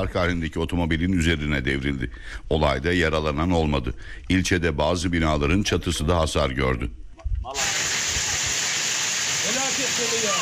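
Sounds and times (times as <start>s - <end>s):
speech: 0.0s - 8.0s, 9.8s - 10.4s
heavy downpour of rain turning to hazelnut-sized hail in Yozgat, Turkey: 7.6s - 10.4s.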